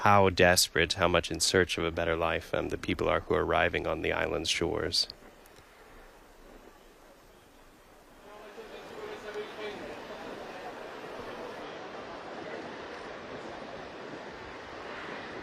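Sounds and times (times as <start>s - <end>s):
speech: 0.0s - 5.2s
gusting wind: 0.0s - 15.4s
rough sea surf roaring at Lampedusa: 2.0s - 15.4s
faint indistinct voices: 6.6s - 14.4s.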